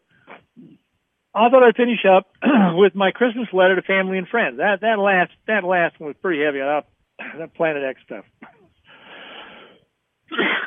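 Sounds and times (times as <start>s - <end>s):
speech: 1.4s - 8.3s
harsh cough: 2.4s - 2.8s, 7.2s - 7.4s, 10.3s - 10.6s
raspy wheezing breath: 8.8s - 9.9s.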